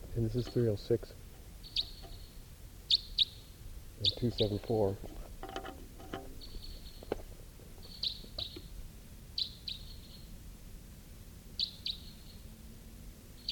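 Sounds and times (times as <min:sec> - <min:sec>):
wild birds chirping: 0:00.0 - 0:10.3
speech: 0:00.2 - 0:01.8, 0:04.0 - 0:05.2.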